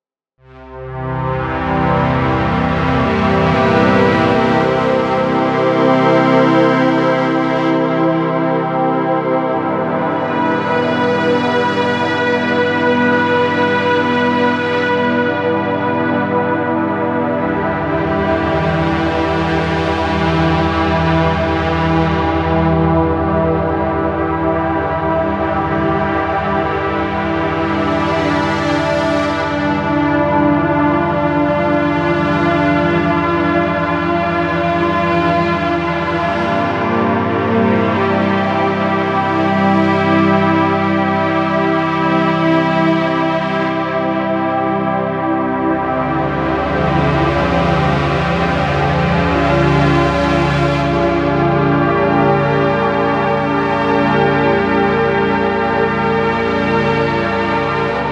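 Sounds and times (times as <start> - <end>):
synth pad: 0.6 - 58.1.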